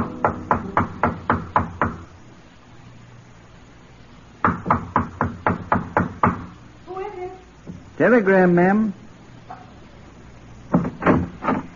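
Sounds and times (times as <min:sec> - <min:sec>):
knocking on a hotel room door: 0:00.0 - 0:02.1, 0:04.4 - 0:06.5, 0:10.7 - 0:11.7
speech: 0:08.0 - 0:09.0.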